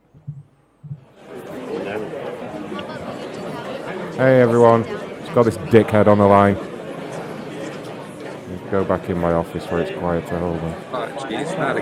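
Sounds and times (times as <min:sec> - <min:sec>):
soft thumps: 0:00.0 - 0:01.2
overlapping indistinct chatter of many people working in a call center: 0:00.0 - 0:11.8
speech: 0:04.2 - 0:06.7, 0:08.7 - 0:11.8.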